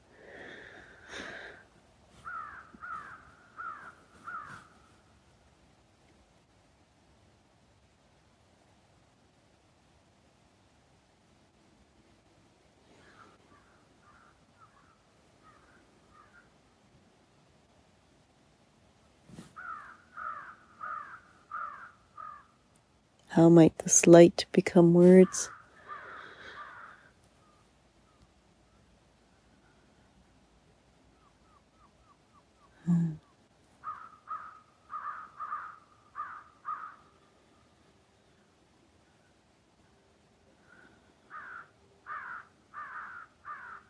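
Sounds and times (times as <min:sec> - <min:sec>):
soft hiss: 0:00.0 - 0:35.0, 0:35.7 - 0:43.8
crows cawing outdoors: 0:02.2 - 0:04.8, 0:13.0 - 0:16.5, 0:19.6 - 0:22.6, 0:25.5 - 0:27.5, 0:33.8 - 0:37.2, 0:40.7 - 0:43.8
speech: 0:23.4 - 0:25.6.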